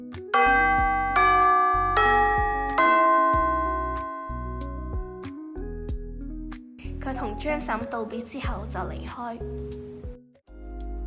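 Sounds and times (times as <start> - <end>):
school bell chime melody ringing for class: 0.4 - 5.2
speech: 7.4 - 10.0.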